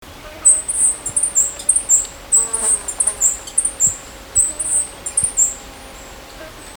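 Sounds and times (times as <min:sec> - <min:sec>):
emerald-chinned hummingbird: 0:00.2 - 0:06.7.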